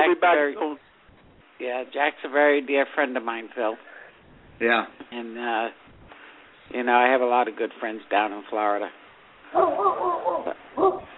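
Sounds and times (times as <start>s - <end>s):
speech: 0.0s - 0.9s, 1.6s - 4.0s, 4.6s - 5.8s, 6.7s - 11.0s
Great Dane dog barking outdoors near a back deck: 9.5s - 11.1s.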